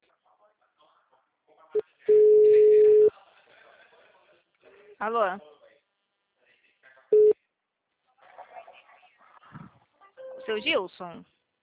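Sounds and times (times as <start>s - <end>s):
telephone busy signal after a dropped call: 2.1s - 3.1s, 7.2s - 7.4s
speech: 5.0s - 5.5s, 10.5s - 11.4s.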